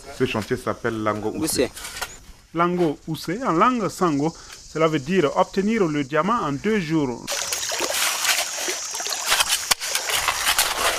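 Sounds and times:
speech: 0:00.1 - 0:07.3
water rushing and splashing in a shallow stream: 0:07.3 - 0:10.2
gravel being sieved in a flowing stream: 0:07.3 - 0:10.9.

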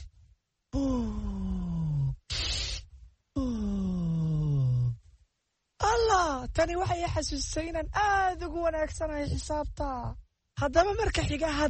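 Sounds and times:
group breathing in and out in a breathing exercise: 0:00.8 - 0:04.9
speech: 0:06.6 - 0:11.6.

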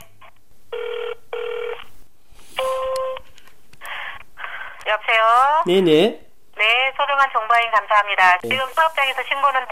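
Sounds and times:
phone keypad tones entering an ID number in an automated phone system: 0:02.6 - 0:03.2
speech: 0:05.6 - 0:06.2, 0:07.2 - 0:09.7.

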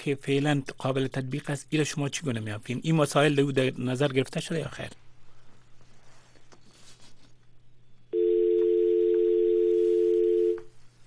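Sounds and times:
speech: 0:00.0 - 0:05.0
quiet telephone line noise: 0:05.8 - 0:11.0
telephone dial tone after call disconnected: 0:08.2 - 0:10.7.

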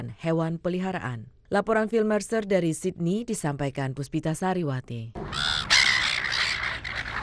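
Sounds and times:
speech: 0:00.0 - 0:05.5
silver gulls squawking at a beach in Australia: 0:05.2 - 0:07.2.

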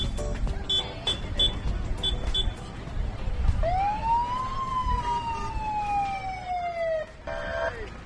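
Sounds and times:
busy outdoor crowd: 0:00.1 - 0:05.7
truck sirens wailing: 0:03.6 - 0:07.9.

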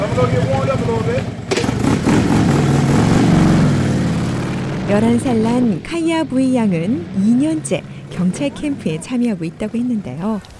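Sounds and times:
police motorcycle engine revving through an obstacle course: 0:00.0 - 0:10.4
speech: 0:00.2 - 0:01.8, 0:04.9 - 0:10.5.

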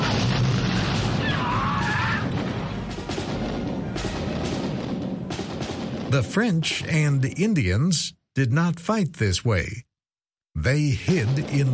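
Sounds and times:
volley of gunfire from a line of troops in an open-field battle: 0:00.0 - 0:06.5, 0:11.0 - 0:11.7
speech: 0:06.1 - 0:09.9, 0:10.6 - 0:11.7.

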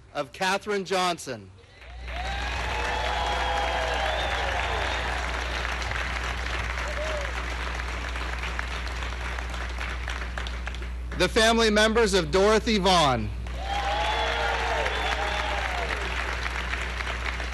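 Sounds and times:
speech: 0:00.2 - 0:01.6, 0:11.2 - 0:13.4
audience cheers and whoops at an honoring event: 0:01.8 - 0:05.6, 0:06.8 - 0:07.5, 0:13.5 - 0:16.3
large audience applauding at an honoring event: 0:01.8 - 0:11.2, 0:13.4 - 0:17.5.

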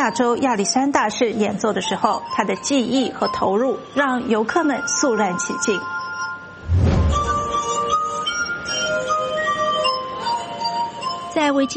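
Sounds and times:
speech: 0:00.0 - 0:06.0, 0:11.4 - 0:11.7
glass harp with fingertips rubbing water-filled wine glasses: 0:01.8 - 0:11.7
low outdoor rumble: 0:06.6 - 0:07.6
dull thump: 0:06.7 - 0:07.5.

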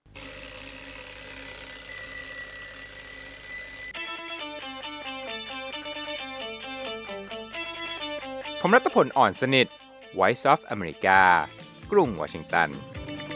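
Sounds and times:
alarm clock metallic ringing: 0:00.1 - 0:04.0
speech: 0:08.6 - 0:13.0.

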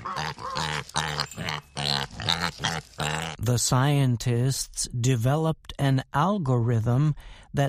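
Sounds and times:
pig grunting and squealing: 0:00.0 - 0:03.4
speech: 0:00.3 - 0:07.6.

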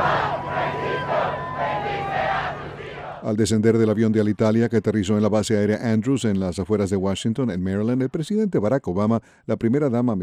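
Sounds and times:
high sustained calls: 0:00.0 - 0:03.2
large crowd shouting and cheering: 0:00.0 - 0:03.2
speech: 0:03.2 - 0:10.2.

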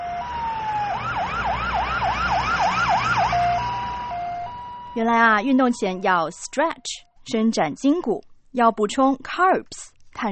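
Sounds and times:
ambulance siren wailing: 0:00.0 - 0:07.0
speech: 0:05.0 - 0:10.3.

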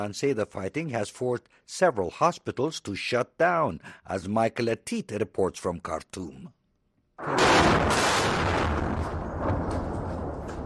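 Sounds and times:
speech: 0:00.0 - 0:06.6
airstrike explosion near military headquarters in Khartoum: 0:07.2 - 0:10.6.

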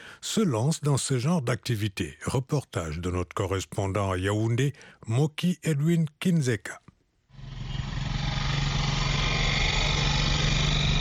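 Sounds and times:
speech: 0:00.2 - 0:06.9
small motorcycle taxi engine running: 0:07.4 - 0:11.0.

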